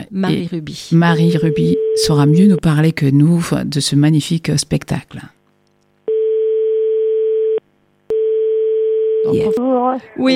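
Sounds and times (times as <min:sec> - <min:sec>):
speech: 0:00.1 - 0:05.4, 0:09.2 - 0:10.3
telephone line tone while a number is dialled: 0:01.2 - 0:02.6, 0:06.1 - 0:09.5.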